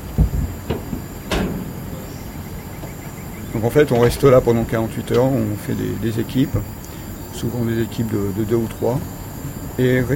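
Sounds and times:
wooden bang: 0.0 - 5.3
door opening with clunks and knocks: 0.0 - 6.8
low hum: 0.0 - 10.1
speech: 3.6 - 6.8, 7.4 - 9.2, 9.8 - 10.1.

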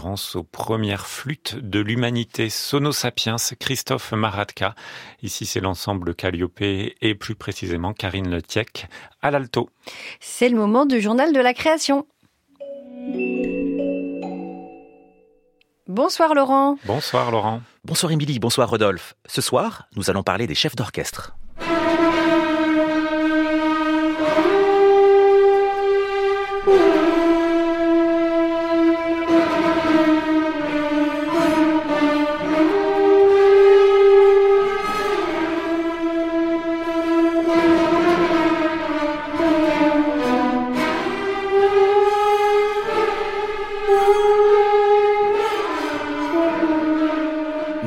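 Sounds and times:
speech: 0.0 - 12.1, 13.0 - 13.6, 15.9 - 21.4, 26.7 - 26.9
orchestra playing: 12.6 - 15.4, 21.4 - 47.8
serpent playing sustained sliding notes: 21.5 - 47.8.

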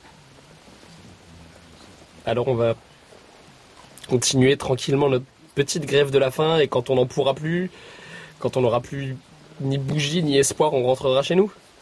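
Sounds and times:
faint low hum: 0.0 - 11.7
steady rain: 0.0 - 11.7
speech: 2.3 - 2.9, 4.1 - 11.6.

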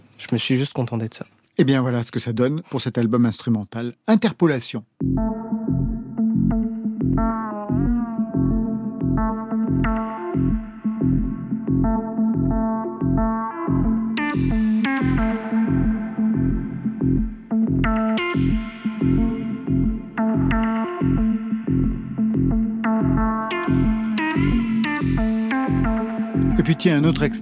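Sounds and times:
speech: 0.2 - 5.4, 26.8 - 27.4
steady pulsing synthesizer bass pattern: 5.0 - 26.6.

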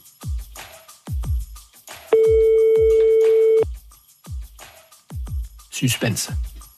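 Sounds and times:
telephone ringing with a long steady electronic tone: 2.2 - 3.6
rhythmic low thumping beat: 2.2 - 3.7
speech: 5.8 - 6.5.

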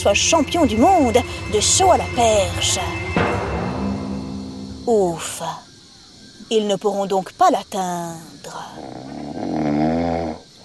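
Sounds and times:
speech: 0.0 - 3.2, 4.9 - 5.6, 6.5 - 8.9
man snoring while asleep: 8.8 - 10.4.

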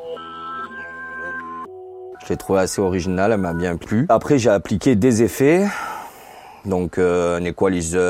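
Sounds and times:
dry unprocessed music loop of sustained synth tones: 0.0 - 4.1
speech: 2.3 - 5.9, 6.6 - 8.0.

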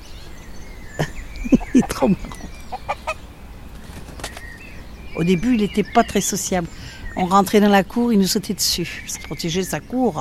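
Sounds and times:
laughter: 1.0 - 2.4
speech: 1.0 - 2.4, 5.2 - 10.2
four-year-old rooster weighing 3 kg clucking: 1.0 - 3.2.

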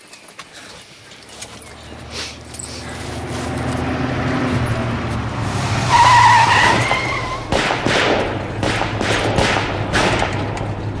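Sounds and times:
low car engine rumble: 0.3 - 10.9
car tires squealing as car skids to a stop during an ambush: 0.9 - 8.6
rapid sharp gunshots during an ambush: 6.6 - 10.9.

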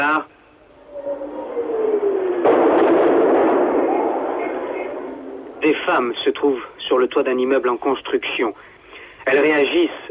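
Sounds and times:
speech: 0.0 - 0.4, 5.6 - 8.7, 9.3 - 10.0
long rumbling roar of the blast: 0.6 - 6.2
falling shell whistle over rooftops: 0.7 - 5.4
loud double explosion during shelling of a capital city: 1.1 - 6.3.

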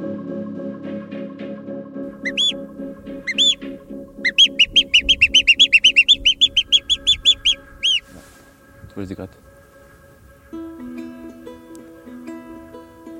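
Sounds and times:
person whistling an imitation of birdsong: 2.2 - 2.7, 3.3 - 3.7, 4.3 - 8.1.

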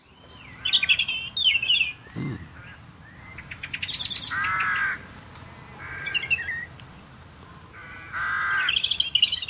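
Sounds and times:
birds chirping and trilling in the morning: 0.0 - 9.4
birds cawing in the morning: 0.5 - 5.1, 5.7 - 6.7, 7.7 - 9.4.

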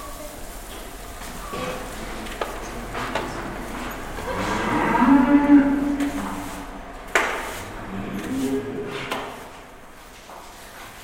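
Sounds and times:
herd of cows and one bull mooing: 0.3 - 10.0
long low bellow of a cow: 1.4 - 9.7.

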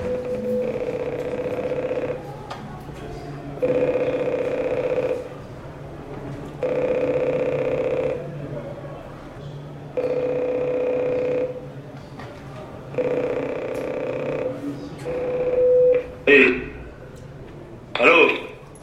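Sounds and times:
prison cell intercom ringing: 0.0 - 2.4, 3.6 - 5.4, 6.6 - 8.4, 9.9 - 11.8, 12.9 - 17.0, 18.0 - 18.6.

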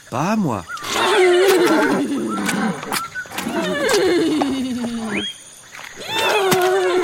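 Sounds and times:
speech: 0.1 - 4.6
pregnant female Eurohippus whinnying to call the male: 0.8 - 5.3, 6.0 - 7.0.

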